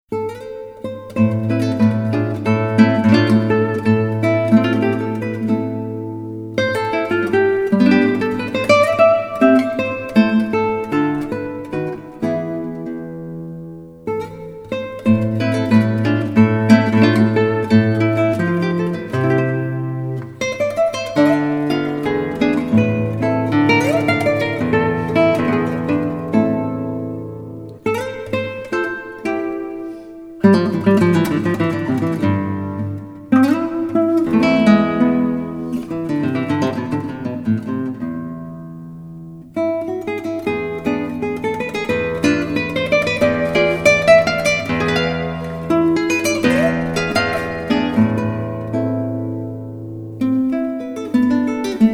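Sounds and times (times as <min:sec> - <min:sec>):
solo guitar: 0:00.0 - 0:51.9.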